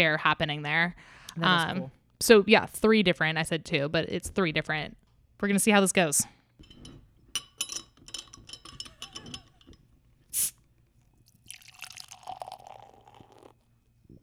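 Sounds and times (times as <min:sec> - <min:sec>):
speech: 0:00.0 - 0:06.4
clinks and handling noises: 0:06.6 - 0:09.9
beer pouring into a glass: 0:11.1 - 0:14.2.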